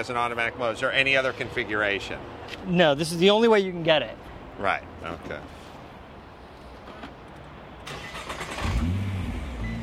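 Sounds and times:
speech: 0.0 - 5.6
2014 Nissan GT-R engine starting: 7.8 - 9.8.

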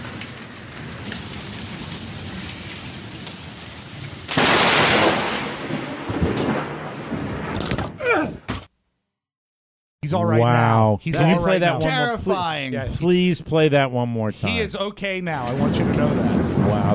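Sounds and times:
steady heavy rain: 0.0 - 7.4, 15.3 - 16.9
loud rumbling roll of thunder: 0.0 - 7.8, 15.3 - 16.9
deafening crack of nearby lightning strike: 0.0 - 8.0, 15.3 - 16.9
speech: 10.1 - 16.9.

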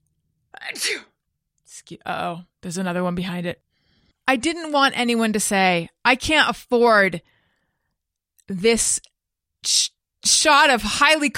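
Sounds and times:
person sneezing: 0.6 - 1.2
speech: 0.7 - 1.1, 1.7 - 3.6, 4.3 - 7.4, 8.5 - 11.3.

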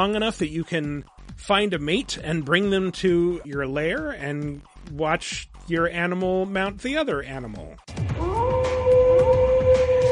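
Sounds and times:
speech: 0.0 - 8.0
animal howl from a video game: 8.1 - 10.0.

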